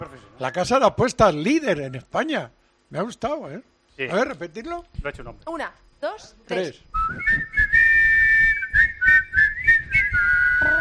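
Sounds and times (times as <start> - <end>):
speech: 0.0 - 7.8
person whistling a steady wavering melody: 6.9 - 10.7.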